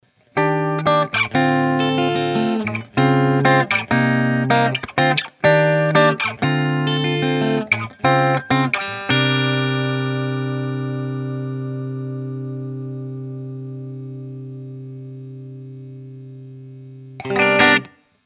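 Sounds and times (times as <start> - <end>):
Framus Artist Phil XG electric guitar with P90 pickups played clean: 0.3 - 18.1.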